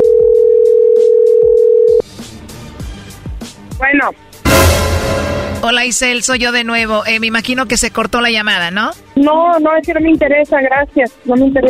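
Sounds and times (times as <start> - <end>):
telephone dial tone while redialing a call: 0.0 - 2.0
speech: 4.0 - 4.3, 5.6 - 11.6.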